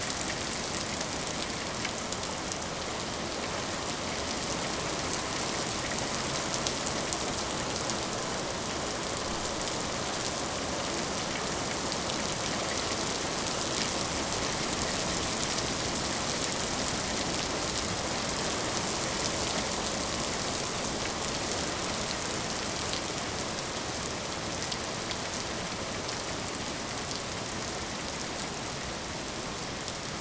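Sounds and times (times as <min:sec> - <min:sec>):
heavy rain: 0:00.0 - 0:30.1.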